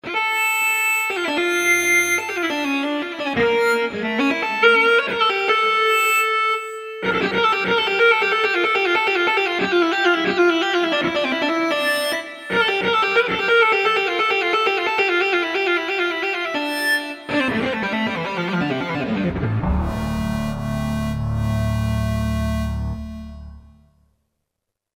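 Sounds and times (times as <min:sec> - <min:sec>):
mono rock electric guitar: 0:01.0 - 0:23.6.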